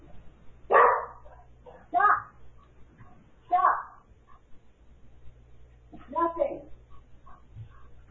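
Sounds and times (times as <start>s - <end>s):
faint low hum: 0.0s - 8.0s
dog barking at a package delivery: 0.7s - 2.3s.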